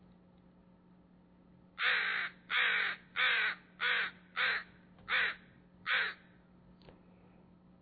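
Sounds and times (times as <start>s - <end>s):
faint low hum: 0.0s - 7.8s
crow cawing: 1.8s - 6.4s.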